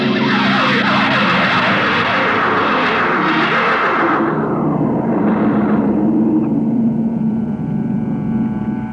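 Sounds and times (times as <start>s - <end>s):
spaceship landing roar: 0.0s - 8.9s.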